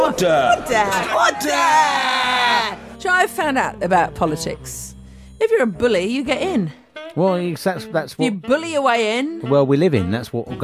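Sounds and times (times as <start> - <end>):
overlapping jeers and calls from crowd: 0.0 - 3.0
speech: 0.1 - 10.6
members of parliament shouting over the Speaker: 0.5 - 2.9.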